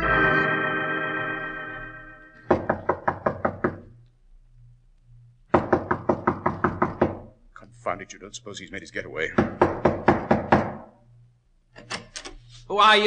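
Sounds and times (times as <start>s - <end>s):
sustained musical chord: 0.0s - 2.5s
quick knocks on a door: 2.5s - 3.9s, 5.5s - 7.3s, 9.4s - 10.9s
speech: 7.9s - 9.8s, 12.7s - 13.0s.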